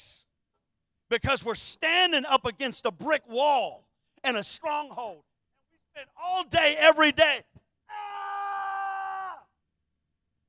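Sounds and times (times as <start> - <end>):
speech: 1.1 - 5.3, 6.0 - 8.0
person yelling loudly: 7.9 - 9.5.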